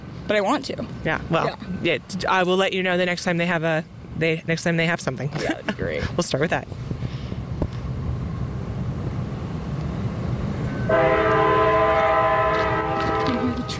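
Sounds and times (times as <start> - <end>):
train rumbling outdoors: 0.0 - 13.7
wind: 0.0 - 13.7
speech: 0.3 - 6.9
loud sustained multi-tone train horn: 10.7 - 13.7.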